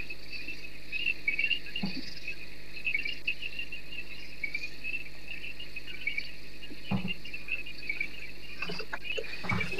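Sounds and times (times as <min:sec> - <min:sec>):
crickets trilling at night: 0:00.0 - 0:09.7.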